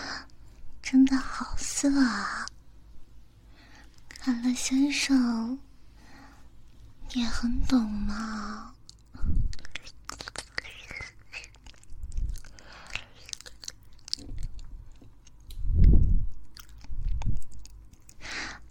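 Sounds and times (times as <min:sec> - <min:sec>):
speech: 0:00.9 - 0:02.4, 0:04.2 - 0:05.7, 0:07.1 - 0:09.4
wet mouth sounds of fingers being chewed: 0:08.8 - 0:18.6.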